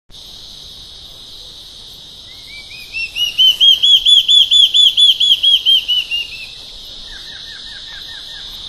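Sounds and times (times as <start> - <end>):
large-tailed antshrike Mackenziaena leachii whistling in Araucaria: 2.3 - 8.4.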